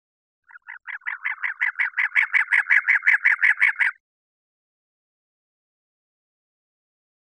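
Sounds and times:
cactus wren churring call: 0.5s - 4.0s.

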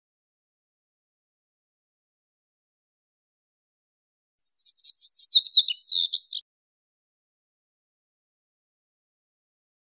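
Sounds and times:
indigo bunting song of high bright doubled notes: 4.4s - 6.4s.

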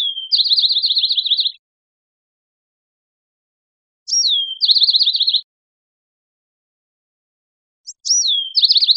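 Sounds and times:
Bewick's wren song: 0.0s - 1.6s, 4.1s - 5.4s, 7.9s - 8.9s.

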